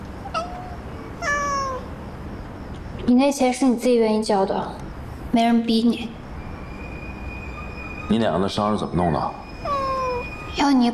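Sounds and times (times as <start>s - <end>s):
faint steady hum: 0.0s - 10.9s
cat meowing: 0.2s - 1.9s, 9.6s - 10.6s
speech: 3.1s - 6.2s, 8.1s - 9.4s, 10.6s - 10.9s.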